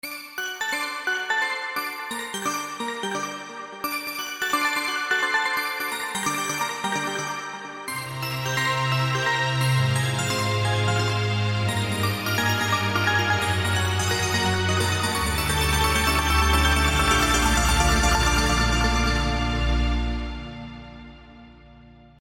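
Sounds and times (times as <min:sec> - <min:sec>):
strings: 0:01.3 - 0:22.1
bells: 0:08.5 - 0:20.1.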